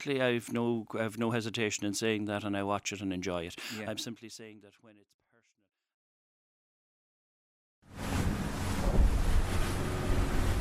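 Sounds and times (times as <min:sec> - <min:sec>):
speech: 0:00.0 - 0:05.2
boat pounding across choppy ocean waves: 0:07.9 - 0:10.5
wind buffeting the microphone: 0:08.0 - 0:10.5.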